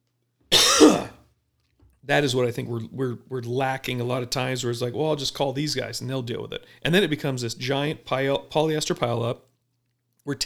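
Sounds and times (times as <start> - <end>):
cough: 0.5 - 1.2
rough throat clearing: 0.5 - 1.2
speech: 2.0 - 9.5, 10.2 - 10.4.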